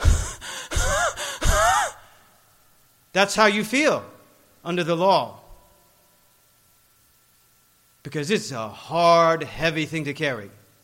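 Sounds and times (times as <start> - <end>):
heavy breathless panting: 0.0 - 1.9
speech: 3.2 - 5.4, 8.1 - 10.6.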